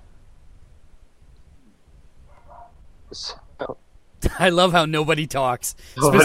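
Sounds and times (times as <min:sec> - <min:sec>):
dog barking: 0:02.3 - 0:02.8
speech: 0:03.1 - 0:06.2
laughter: 0:06.0 - 0:06.2.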